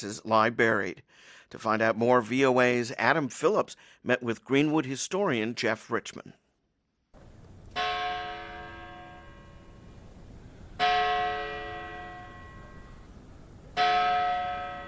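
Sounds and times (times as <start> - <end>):
speech: 0.0 - 6.4
large cemetery church bell tolling: 7.8 - 10.0, 10.6 - 14.8.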